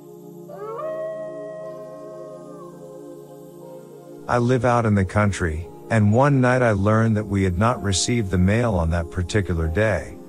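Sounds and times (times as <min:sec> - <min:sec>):
fox howling: 0:00.5 - 0:03.7
speech: 0:04.3 - 0:10.2.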